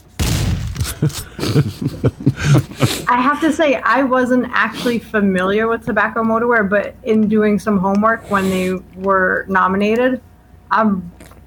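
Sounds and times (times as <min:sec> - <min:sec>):
shotgun blast: 0:00.1 - 0:01.2
laughter: 0:00.9 - 0:03.6
speech: 0:01.0 - 0:11.2.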